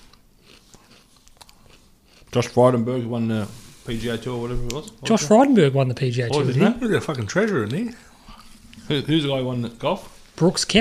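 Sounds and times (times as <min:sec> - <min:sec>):
crunchy chewing of food with sharp bites: 0:00.0 - 0:02.7
low hum: 0:00.0 - 0:10.7
speech: 0:02.3 - 0:08.1, 0:08.9 - 0:10.7.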